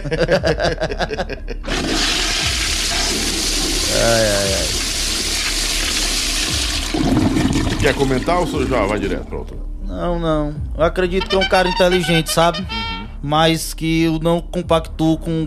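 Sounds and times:
laughter: 0.0 - 1.7
speech: 0.0 - 4.9, 6.5 - 15.4
toilet flushing with swirling water: 1.6 - 9.2.

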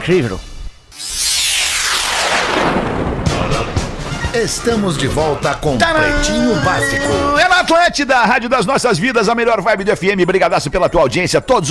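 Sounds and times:
speech: 0.0 - 1.1, 4.4 - 11.7
firecrackers exploding: 0.9 - 4.2.

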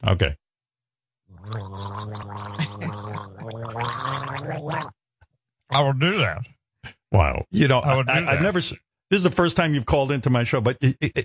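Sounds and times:
speech: 0.0 - 0.4, 1.3 - 5.0, 5.7 - 11.2
person gargling: 1.3 - 5.0.

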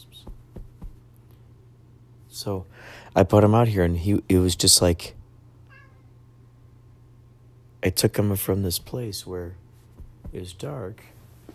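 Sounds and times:
steady low hum: 0.0 - 11.5
speech: 2.4 - 5.2, 7.8 - 9.6, 10.3 - 11.2
short high cat meow: 5.7 - 6.1.

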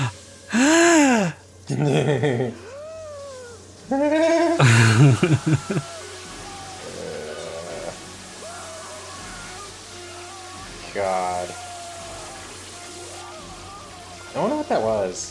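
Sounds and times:
sharp gasps from a horror film: 0.5 - 1.4
laughter: 1.2 - 2.8, 3.9 - 7.3
speech: 1.7 - 2.7, 3.9 - 6.0, 11.0 - 11.6, 14.3 - 15.3.

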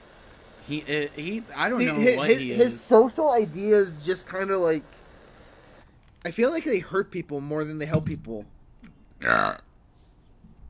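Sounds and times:
speech: 0.7 - 5.0, 6.2 - 8.6, 9.2 - 9.6
loud buzzy rumbling burp: 9.2 - 9.7.

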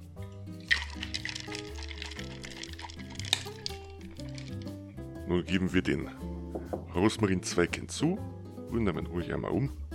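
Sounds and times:
music: 0.0 - 9.9
cocktail shaker rattling with ice and liquid, Scotch cocktail with lemon juice and ginger-honey syrup: 0.6 - 4.9
speech: 5.3 - 9.8.

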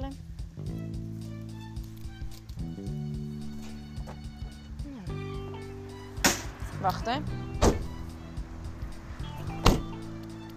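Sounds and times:
engine idling: 0.0 - 10.5
speech: 6.8 - 7.4
car door lock clunking: 7.6 - 8.0, 9.5 - 10.0.

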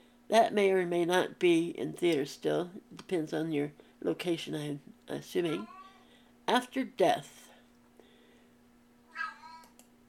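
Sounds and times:
low steady hum: 0.0 - 10.0
speech: 0.3 - 5.8, 6.5 - 7.4
house cat meowing: 5.6 - 6.0, 9.1 - 9.8
faint clicks: 9.6 - 9.9.

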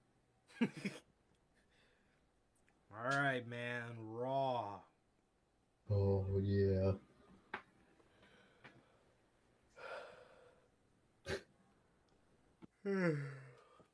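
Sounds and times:
speech: 0.6 - 1.1, 2.9 - 4.9, 5.9 - 7.1, 12.8 - 13.4
soft breath: 7.8 - 10.7
person yawning: 12.8 - 13.8.

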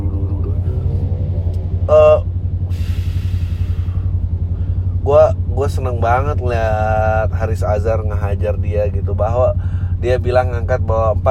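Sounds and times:
loud motorcycle engine passing by: 0.0 - 5.0
speech: 5.7 - 11.2.

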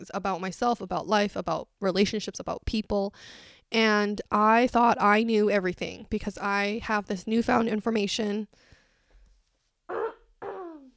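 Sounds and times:
speech: 0.1 - 8.8
throat clearing from a clogged throat: 9.9 - 10.9.

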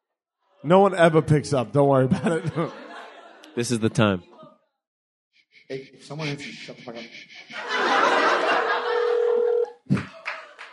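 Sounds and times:
speech: 0.6 - 2.8, 3.6 - 4.3, 5.7 - 8.6
laughter: 2.1 - 3.5, 6.8 - 9.7
room noise: 5.6 - 9.7
telephone keypad dialing tone beeping: 8.7 - 9.7.

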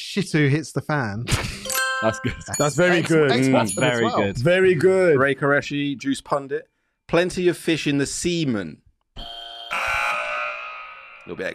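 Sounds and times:
speech: 0.2 - 8.8, 11.2 - 11.5
electronic game show buzzer: 9.2 - 11.4.

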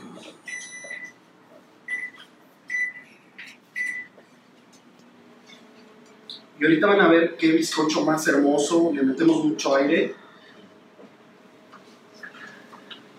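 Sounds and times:
faint steady hum of a microwave oven: 0.0 - 13.1
microwave oven keypad electronic beeps: 0.5 - 1.2, 1.9 - 3.1, 3.8 - 4.2
speech: 6.6 - 10.2.

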